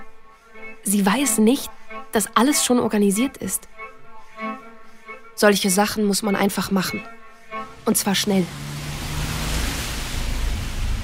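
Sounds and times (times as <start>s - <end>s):
speech: 0.8s - 3.9s, 5.4s - 7.2s, 7.8s - 8.7s
rain: 7.7s - 11.0s
wind with low gusting rumble: 7.7s - 11.0s.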